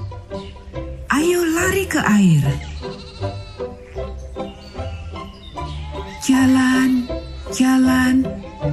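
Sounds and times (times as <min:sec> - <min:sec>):
speech: 0:01.2 - 0:02.7, 0:06.3 - 0:08.7
sheep bleating: 0:02.4 - 0:03.9, 0:05.6 - 0:08.7.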